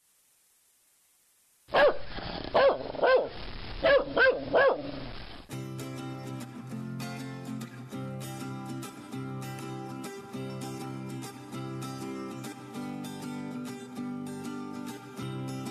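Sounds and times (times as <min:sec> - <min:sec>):
dog barking loud and sharp: 0:01.7 - 0:05.0
music playing: 0:05.5 - 0:15.6.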